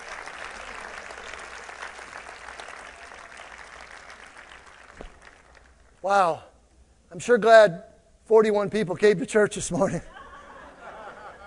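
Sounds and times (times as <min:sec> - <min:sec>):
large audience applause: 0:00.0 - 0:05.9
speech: 0:06.0 - 0:06.5, 0:07.1 - 0:10.1
laughter: 0:10.1 - 0:11.4.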